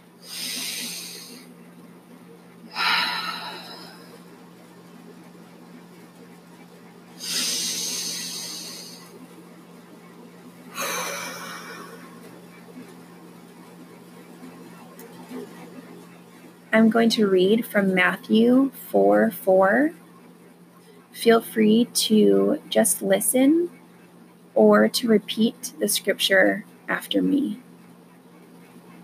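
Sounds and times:
faint steady low hum: 0.0 - 29.0
deep breathing during a guided scripture meditation: 0.2 - 1.5, 2.7 - 4.2, 7.2 - 9.2, 10.7 - 12.2
speech: 16.8 - 20.0, 21.2 - 23.8, 24.6 - 27.6.

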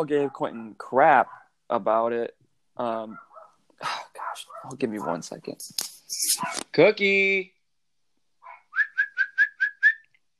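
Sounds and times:
speech: 0.0 - 7.6
person whistling to call a dog: 8.7 - 10.1.

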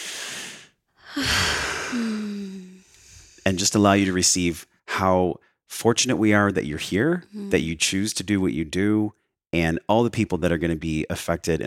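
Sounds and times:
person taking a deep breath with a low voiced sigh: 0.0 - 3.5
speech: 3.5 - 11.6.

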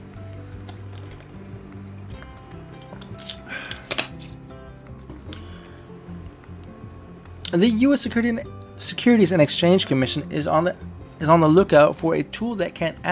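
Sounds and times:
person sipping water: 0.6 - 4.4
speech: 7.5 - 13.1.

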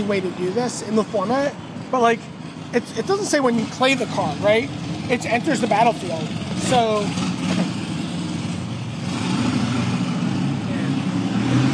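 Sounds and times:
speech: 0.0 - 7.7
motorcycle engine revving outside: 2.9 - 11.7.

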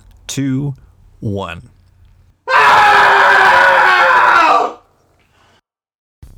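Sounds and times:
speech: 0.3 - 1.7
people screaming together: 2.5 - 4.8.

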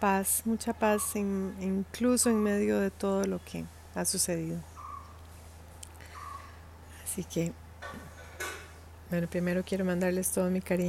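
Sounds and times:
speech: 0.0 - 4.7, 7.2 - 8.1, 9.1 - 10.8
steady low hum: 0.0 - 10.8
small birds chirping on a terrace in India: 0.6 - 3.7, 4.4 - 7.5.

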